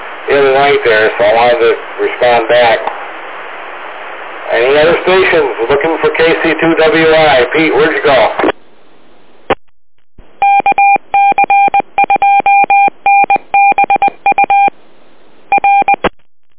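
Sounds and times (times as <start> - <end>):
static hiss: 0.0 - 9.6
speech: 0.3 - 2.9, 4.5 - 8.6
DTMF touch-tone telephone dialing beeps: 10.4 - 14.7, 15.5 - 16.1.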